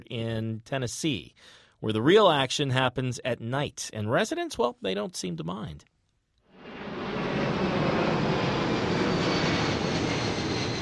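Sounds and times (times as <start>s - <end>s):
speech: 0.1s - 5.9s
airplanes flying low overhead in an airport flight path: 6.5s - 10.8s.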